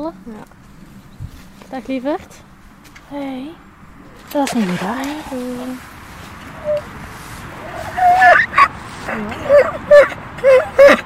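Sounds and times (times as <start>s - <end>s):
speech: 0.0s - 0.6s, 1.7s - 2.5s, 3.1s - 3.7s, 4.3s - 5.9s, 6.6s - 7.0s, 9.2s - 11.0s
donkey in a large meadow braying hoarsely: 6.4s - 11.0s.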